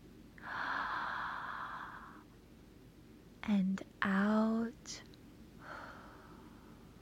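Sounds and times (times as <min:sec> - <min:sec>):
long deep inhale through the mouth: 0:00.4 - 0:02.3, 0:05.6 - 0:07.0
speech: 0:03.4 - 0:05.1.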